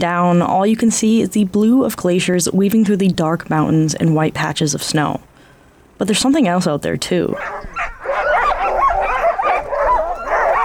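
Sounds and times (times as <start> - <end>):
speech: 0.0 - 5.3, 6.0 - 7.8
nearly 200 sled dogs barking and yipping at a sled dog camp on the Norris Glacier: 7.4 - 10.6.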